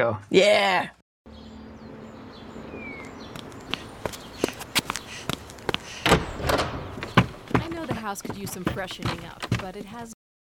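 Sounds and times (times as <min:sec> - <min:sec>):
speech: 0:00.0 - 0:01.0, 0:08.0 - 0:10.2
running footsteps thudding: 0:03.2 - 0:10.2.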